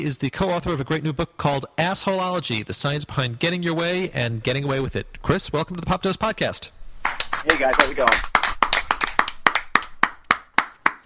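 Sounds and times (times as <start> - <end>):
speech: 0.0 - 8.4
two people clapping off mic as applause: 7.0 - 11.0.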